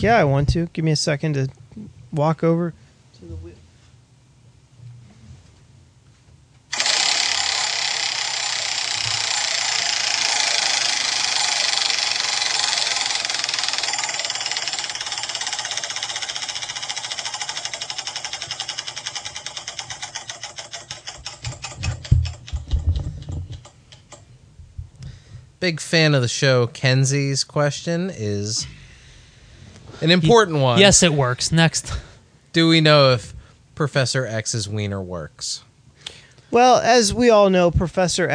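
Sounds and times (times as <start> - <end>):
speech: 0.0 - 3.6, 25.6 - 28.8, 30.0 - 35.7, 36.5 - 38.3
prize wheel spinning and clicking: 6.7 - 24.2.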